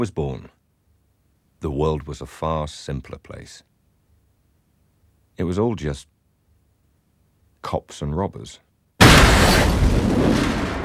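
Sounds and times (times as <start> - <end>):
speech: 0.0 - 0.6, 1.6 - 3.7, 5.4 - 6.1, 7.6 - 8.6
explosion blowing open the back doors of a 1960s Ford Transit van: 9.0 - 10.8.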